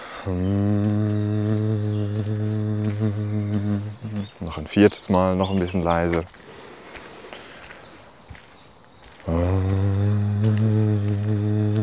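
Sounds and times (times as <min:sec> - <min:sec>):
single voice humming while exhaling: 0:00.0 - 0:05.5, 0:09.2 - 0:11.8
speech: 0:00.2 - 0:01.0, 0:04.6 - 0:06.4.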